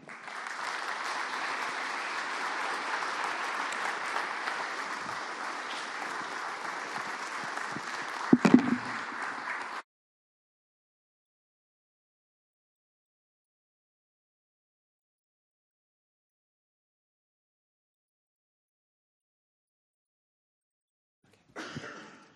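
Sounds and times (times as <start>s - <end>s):
audience applause: 0.0s - 9.8s.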